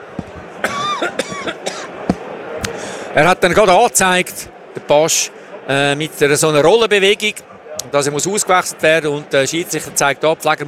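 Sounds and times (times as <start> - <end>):
person coughing away from the microphone: 0.6 - 1.9
speech: 1.0 - 1.6, 3.2 - 10.6.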